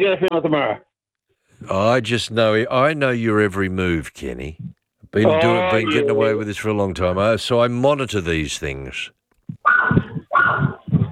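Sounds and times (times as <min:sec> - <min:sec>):
speech: 0:00.0 - 0:00.9, 0:01.6 - 0:09.9
puppy barking during a phone call from Western Australia: 0:09.6 - 0:11.1.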